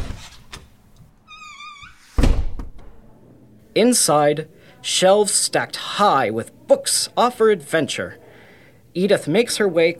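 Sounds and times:
library door hinges creaking: 0.0 - 2.8
library door shutting with a thud: 1.5 - 3.0
speech: 3.8 - 8.2, 9.0 - 9.9.

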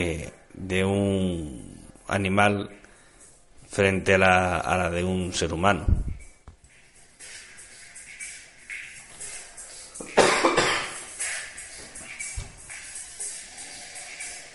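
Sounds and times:
speech: 0.0 - 2.8, 3.7 - 6.0
loud person coughing and hacking: 10.0 - 11.1.

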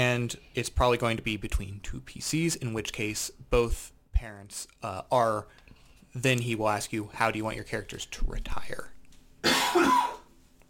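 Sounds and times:
speech: 0.0 - 10.1
person coughing: 9.4 - 10.3.

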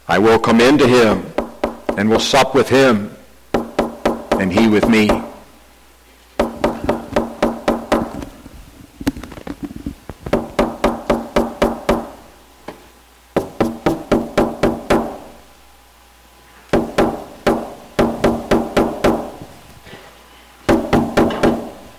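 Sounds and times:
speech: 0.1 - 1.3, 2.0 - 3.2, 4.4 - 5.3
loud repeated knocking on a door: 1.4 - 2.0, 3.6 - 5.3, 6.4 - 8.1, 10.3 - 12.1, 13.4 - 15.2, 16.8 - 19.3, 20.7 - 21.7.

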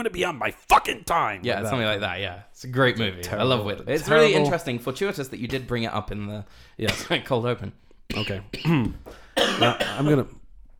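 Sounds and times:
speech: 0.0 - 10.4
rough hacking coughing and throat clearing: 6.9 - 7.2, 8.1 - 10.2.

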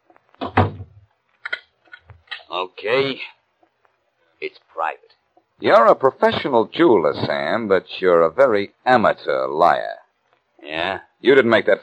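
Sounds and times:
door thudding shut: 0.4 - 1.0
speech: 2.6 - 3.4, 4.4 - 10.0, 10.6 - 11.8.

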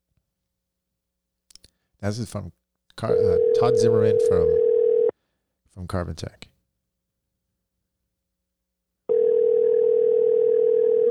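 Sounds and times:
speech: 2.0 - 4.7, 5.8 - 6.5
steady electronic ringback tone on a phone line: 3.1 - 5.1, 9.1 - 11.0.

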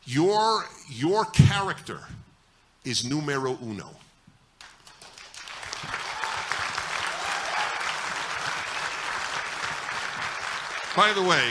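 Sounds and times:
speech: 0.0 - 2.2, 2.8 - 4.1, 11.0 - 11.4
room full of people applauding: 4.8 - 11.4.

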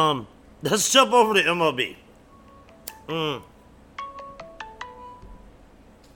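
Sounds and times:
speech: 0.0 - 2.0, 3.1 - 3.5
phone ringtone from an incoming call: 2.3 - 2.8, 4.0 - 5.3.

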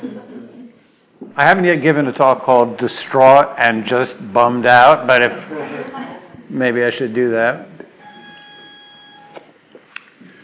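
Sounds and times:
laughter: 0.0 - 0.8, 5.3 - 6.5
speech: 1.4 - 5.8, 6.5 - 7.7
door entry buzzer: 8.0 - 9.4.

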